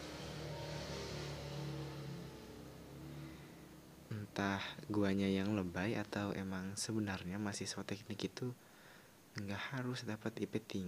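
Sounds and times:
motorcycle engine droning as it passes outside: 0.0 - 4.2
speech: 4.2 - 8.7, 9.4 - 10.8.

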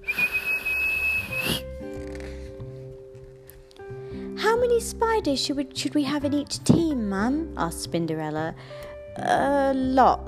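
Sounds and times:
long shrill whistle blast: 0.0 - 1.6
speech: 4.8 - 10.2.

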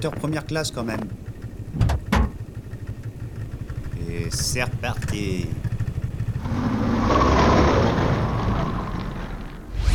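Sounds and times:
speech: 0.0 - 1.9, 4.1 - 5.7
motorcycle engine idling: 0.0 - 7.0
motorcycle throttle revs: 2.9 - 9.6.

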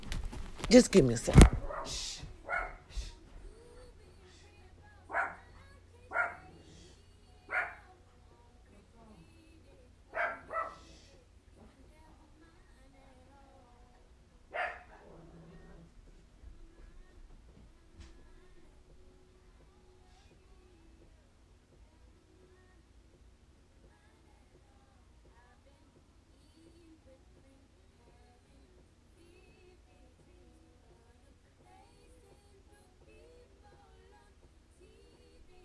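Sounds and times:
steady low hum: 0.0 - 35.6
speech: 0.7 - 2.0
dog barking in short sharp yaps: 1.5 - 2.9, 5.1 - 5.5, 6.1 - 6.5, 7.5 - 7.9, 10.1 - 10.9, 14.5 - 15.2.

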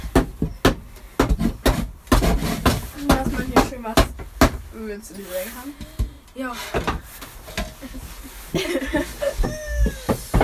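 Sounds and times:
hand saw cutting a notch into wood: 1.3 - 3.8
speech: 3.8 - 4.0, 4.8 - 9.6
laughter: 7.8 - 10.2.

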